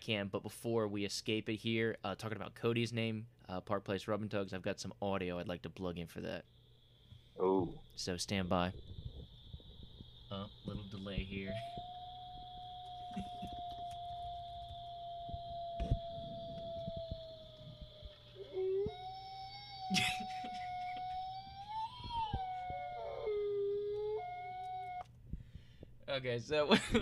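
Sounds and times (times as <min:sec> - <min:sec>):
speech: 0:00.0 - 0:06.6, 0:07.4 - 0:09.0, 0:10.3 - 0:11.9, 0:26.2 - 0:27.0
wolves howling in long wavering notes: 0:11.2 - 0:25.1.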